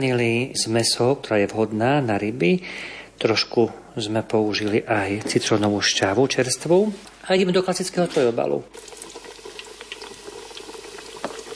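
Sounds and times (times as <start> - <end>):
speech: 0.0 - 9.0
hot oil popping and crackling: 8.7 - 11.5
carp sizzling in hot oil in a frying pan: 9.4 - 11.5.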